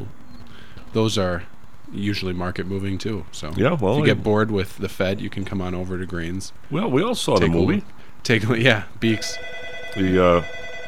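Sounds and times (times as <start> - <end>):
faint steady hum: 0.0 - 10.8
speech: 0.9 - 10.6
telephone ringing: 9.0 - 10.8.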